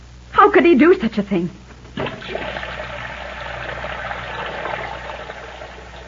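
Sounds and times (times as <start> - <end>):
speech: 0.4 - 2.1
tap water gushing at full force: 1.9 - 6.0.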